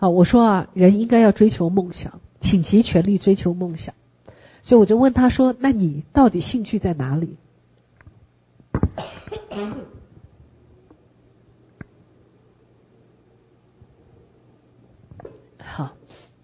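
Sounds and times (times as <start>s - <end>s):
speech: 0.0s - 4.0s, 4.6s - 7.4s, 9.0s - 10.0s, 15.8s - 16.0s
person coughing: 8.8s - 10.0s.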